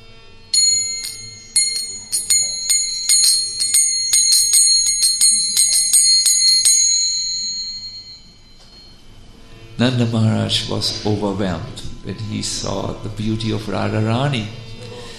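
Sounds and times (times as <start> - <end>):
small ankle bells tinkling: 0.6 - 9.0
speech: 9.8 - 14.6.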